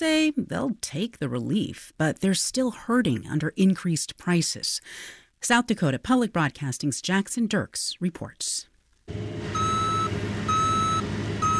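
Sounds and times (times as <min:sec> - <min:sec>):
speech: 0:00.0 - 0:09.8
cargo truck engine rumbling: 0:09.1 - 0:11.5
cargo truck reversing alarm beeps: 0:09.5 - 0:11.5.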